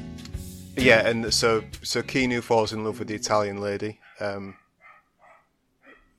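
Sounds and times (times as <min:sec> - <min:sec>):
speech: 0:00.8 - 0:04.6
dog barking: 0:04.0 - 0:06.1.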